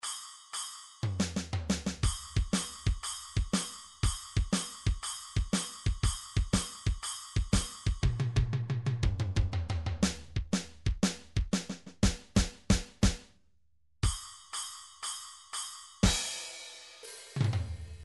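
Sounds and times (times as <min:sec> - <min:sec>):
MIDI drums playing a shuffle: 0:01.1 - 0:13.3.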